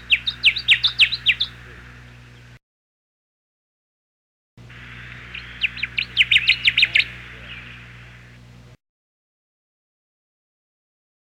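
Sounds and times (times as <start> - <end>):
Connecticut warbler singing: 0.0 - 2.6, 4.6 - 8.8.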